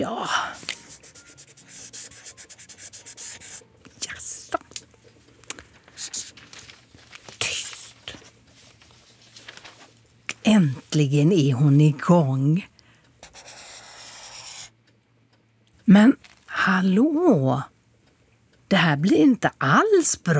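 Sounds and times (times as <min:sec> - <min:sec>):
felt-tip pen drawing snow on paper: 0:00.7 - 0:03.6, 0:13.2 - 0:14.7
speech: 0:10.6 - 0:12.7, 0:15.9 - 0:16.2, 0:16.8 - 0:17.7, 0:18.7 - 0:20.3.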